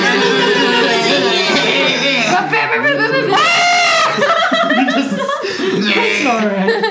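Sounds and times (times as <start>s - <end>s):
people imitating screaming goats: 0.0s - 4.4s
people chuckling and laughing: 0.0s - 6.8s.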